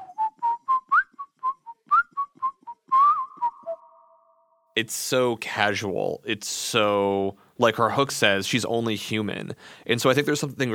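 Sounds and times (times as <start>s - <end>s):
person whistling a bouncy melody of quick short notes opening a rap track: 0.0s - 4.2s
speech: 4.8s - 10.7s.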